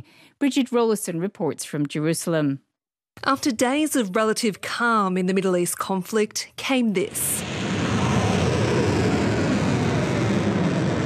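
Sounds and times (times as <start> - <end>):
speech: 0.0 - 7.5
missiles and drones launching: 7.1 - 11.0.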